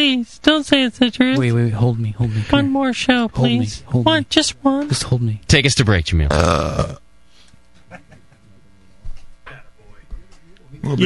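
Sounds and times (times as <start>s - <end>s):
speech: 0.0s - 7.0s, 10.8s - 11.0s
brief vocal sounds: 6.3s - 7.0s
loud low burp: 6.3s - 7.0s
quieter throaty murmurs: 6.3s - 7.0s.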